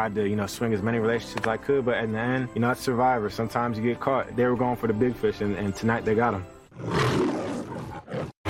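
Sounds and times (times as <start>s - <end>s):
speech: 0.0s - 7.3s
lion roar sound effect: 6.7s - 8.4s.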